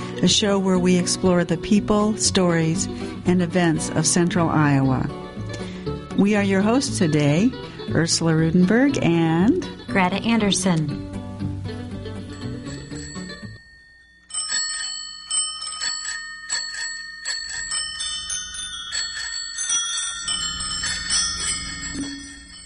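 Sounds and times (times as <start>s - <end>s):
music: 0.0s - 13.7s, 19.8s - 22.6s
speech: 0.2s - 5.6s, 6.2s - 11.1s
many bicycle bells ringing: 12.3s - 22.6s.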